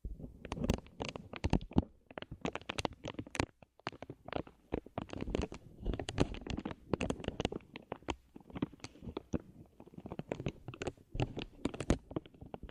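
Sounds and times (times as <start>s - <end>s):
crinkly tapping and scratching as in ear cleaning: 0.0s - 12.6s.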